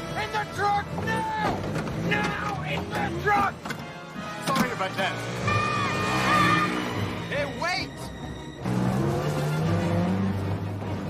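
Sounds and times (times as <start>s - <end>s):
tire noise: 0.0s - 11.0s
speech: 0.8s - 3.7s, 4.8s - 5.6s
truck engine revving and roaring away: 5.1s - 7.3s, 8.6s - 11.0s.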